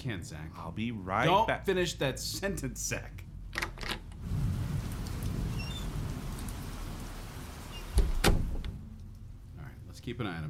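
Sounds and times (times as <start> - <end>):
speech: 0.0 - 3.3, 10.0 - 10.4
steady rain falling outdoors: 4.0 - 9.7.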